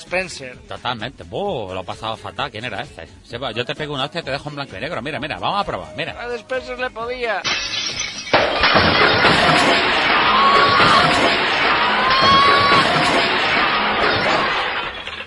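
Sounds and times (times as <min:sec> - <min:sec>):
speech: 0:00.1 - 0:09.0
glass shattering and crashing: 0:07.4 - 0:15.2
loud chaotic din: 0:08.4 - 0:15.2
people shouting: 0:09.2 - 0:14.7.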